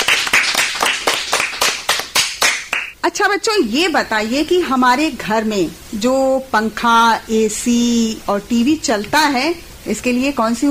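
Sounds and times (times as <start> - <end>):
children applauding in a classroom: 0.0 - 2.9
speech: 3.1 - 10.6.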